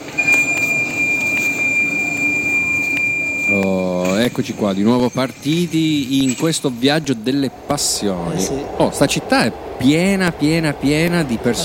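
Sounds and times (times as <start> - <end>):
thin sustained metallic squeal: 0.0 - 6.9
subway train rumbling along the rails: 0.0 - 11.6
speech: 4.4 - 11.6.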